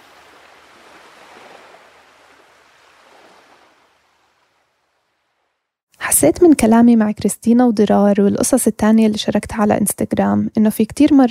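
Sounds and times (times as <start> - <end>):
sea waves with hissing surf rolling in and receding: 0.0 - 5.8
speech: 6.2 - 11.3.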